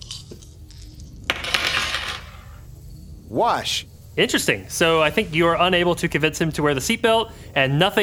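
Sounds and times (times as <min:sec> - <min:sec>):
dice rattling and clattering across a hard surface: 0:00.3 - 0:02.5
speech: 0:03.3 - 0:08.0.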